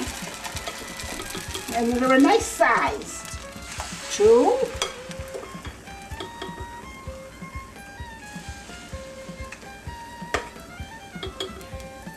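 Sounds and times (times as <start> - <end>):
latkes frying in hot oil: 0.0 - 12.1
utensil clinking against the pan: 0.4 - 1.9, 4.7 - 6.6, 11.2 - 11.8
speech: 1.8 - 3.2, 4.2 - 4.8.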